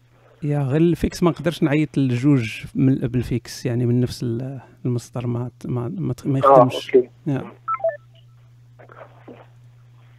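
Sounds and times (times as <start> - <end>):
speech: 0.4 - 7.6
steady low hum: 6.4 - 7.1
faint voices: 6.4 - 8.0
telephone keypad dialing tones: 7.7 - 8.0.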